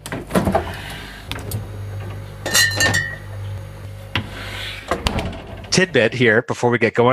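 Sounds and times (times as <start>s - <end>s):
garage fridge door opening: 0.0s - 6.2s
low garage refrigerator hum: 0.0s - 6.3s
glass beer bottles clinking in a garage fridge: 2.4s - 3.3s
speech: 5.8s - 7.1s.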